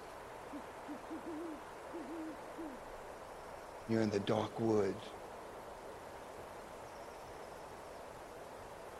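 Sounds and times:
owl hooting: 0:00.4 - 0:02.9
speech: 0:00.6 - 0:02.9, 0:03.9 - 0:05.2.

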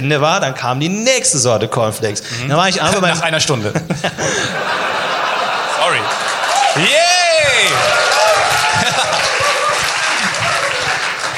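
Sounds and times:
speech: 0:00.0 - 0:05.0, 0:05.9 - 0:06.2, 0:06.8 - 0:07.1
laughter: 0:02.3 - 0:11.3
applause from many hands: 0:05.8 - 0:11.3.

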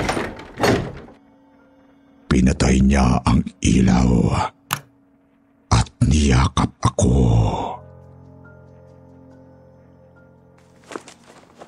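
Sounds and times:
door swung shut with a solid wooden thunk: 0:00.0 - 0:01.2
speech: 0:02.4 - 0:04.6, 0:06.0 - 0:07.8.

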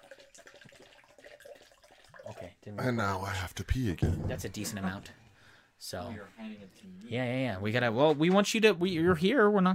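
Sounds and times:
grape juice pouring into a cup: 0:00.0 - 0:02.8
speech: 0:02.6 - 0:05.2, 0:05.8 - 0:09.7.

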